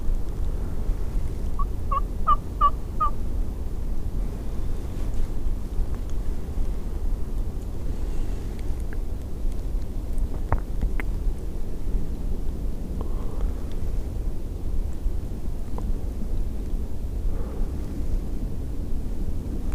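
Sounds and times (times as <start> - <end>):
steady low outdoor rumble of wind: 0.0 - 19.7
hen turkey yelping raspy notes: 1.6 - 3.1.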